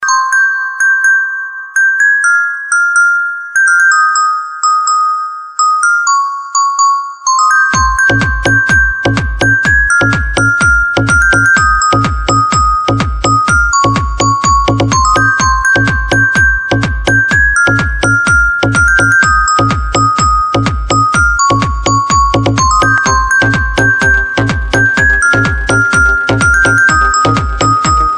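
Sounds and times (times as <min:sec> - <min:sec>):
mobile phone ringtone: 0:00.0 - 0:28.1.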